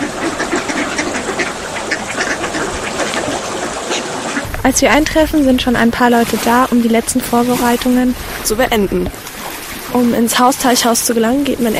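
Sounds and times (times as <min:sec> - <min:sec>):
ducks quacking on a calm lake: 0:00.0 - 0:09.9
soft outdoor hiss: 0:04.1 - 0:11.7
speech: 0:04.6 - 0:09.3, 0:09.9 - 0:11.7.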